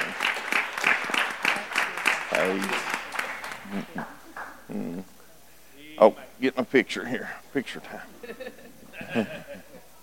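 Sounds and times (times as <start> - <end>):
audience applauding: 0.0 - 4.6
speech: 2.4 - 3.0, 3.7 - 5.2, 6.0 - 9.7
laughter: 7.8 - 10.0.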